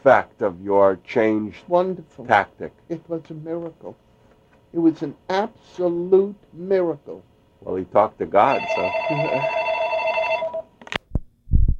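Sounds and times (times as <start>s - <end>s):
speech: 0.0s - 4.0s, 4.7s - 9.6s
telephone bell ringing with an incoming call: 8.4s - 10.8s.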